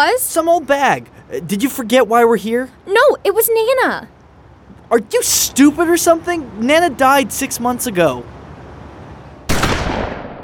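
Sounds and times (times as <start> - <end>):
speech: 0.1 - 4.2, 4.9 - 8.4
loud sustained crackling burst of gunfire: 9.5 - 10.4
single sharp gunshot: 9.5 - 10.4.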